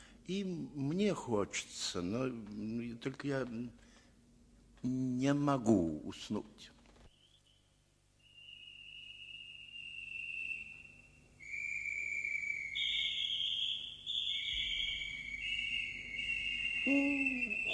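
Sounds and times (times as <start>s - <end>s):
faint low hum: 0.0s - 17.7s
speech: 0.3s - 3.8s, 4.8s - 6.8s, 16.9s - 17.5s
nightingales singing: 11.4s - 17.7s.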